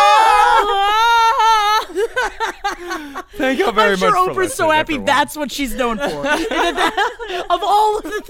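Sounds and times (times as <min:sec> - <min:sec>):
person imitating a celebrity screaming: 0:00.0 - 0:01.8
laughter: 0:00.2 - 0:08.2
speech: 0:03.4 - 0:08.2.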